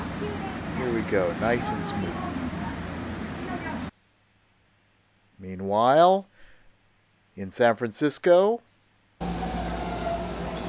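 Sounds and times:
BART subway train roaring at a San Francisco station platform: 0.0s - 3.9s, 9.2s - 10.6s
speech: 1.1s - 2.4s, 5.4s - 6.3s, 7.4s - 9.4s.

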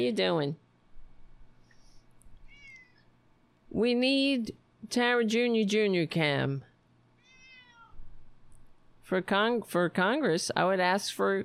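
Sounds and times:
speech: 0.0s - 0.6s, 3.7s - 6.7s, 9.1s - 11.4s
cat meowing: 2.4s - 3.1s, 7.2s - 8.0s.

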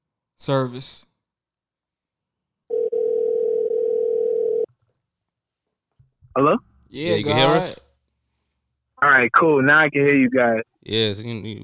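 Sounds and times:
speech: 0.4s - 1.1s, 6.4s - 7.8s, 9.0s - 11.6s
telephone dial tone while redialing after a dropped call: 2.7s - 4.7s.

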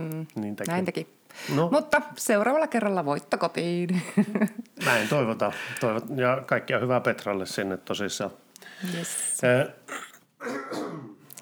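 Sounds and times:
speech: 0.2s - 11.0s
laughter: 3.9s - 5.8s
gravelly exhalation: 4.7s - 6.3s, 8.6s - 11.3s
rough throat-clearing cough: 9.9s - 11.2s.

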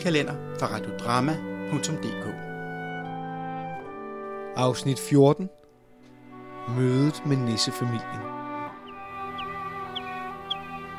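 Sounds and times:
speech: 0.0s - 2.5s, 4.6s - 5.6s, 6.6s - 8.4s
steady sustained musical drone: 7.8s - 10.9s
birdsong in short high chirps: 8.6s - 10.9s.

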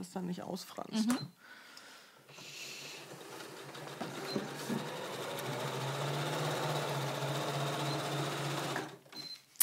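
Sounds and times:
speech: 0.0s - 1.7s
sewing machine running a zigzag stitch along a lining edge: 2.8s - 9.2s.

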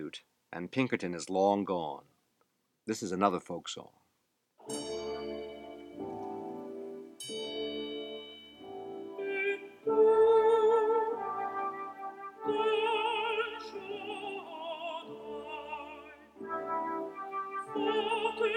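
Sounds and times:
speech: 0.1s - 2.1s, 2.9s - 4.0s
bell rung by a maid during an intoned opera prayer: 4.6s - 6.6s, 7.2s - 9.5s
sustained instrumental tones: 4.6s - 18.5s.

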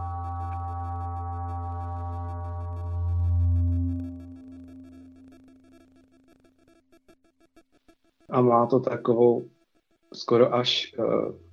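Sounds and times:
deep gong-like tone ringing with layered metallic overtones: 0.0s - 5.5s
speech: 8.3s - 9.6s, 10.2s - 11.5s.

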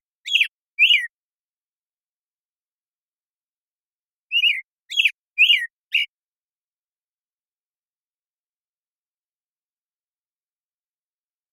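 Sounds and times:
American Robin Turdus migratorius morning song in Washington: 0.2s - 1.2s, 4.3s - 6.2s.

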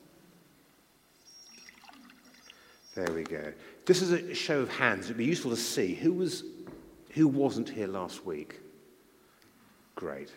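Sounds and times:
water being poured into a glass: 1.5s - 2.5s
speech: 3.0s - 8.6s, 10.0s - 10.3s.

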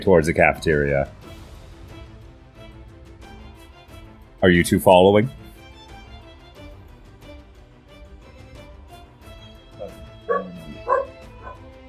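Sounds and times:
speech: 0.0s - 1.3s, 4.4s - 5.4s
dog barking: 9.8s - 11.7s.

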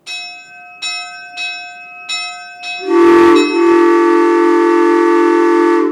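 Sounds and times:
steam locomotive train bell clanging: 0.0s - 5.8s
100 PSI steam locomotive train whistle blasting: 2.8s - 5.8s.

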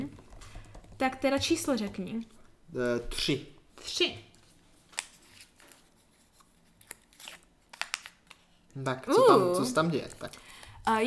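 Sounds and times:
speech: 1.0s - 4.3s, 8.8s - 11.0s
small paper card being handled and flipped over: 4.4s - 8.5s.

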